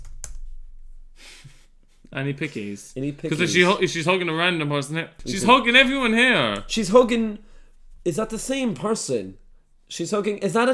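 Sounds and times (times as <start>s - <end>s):
computer keyboard typing: 0.0s - 0.5s
speech: 2.1s - 10.7s.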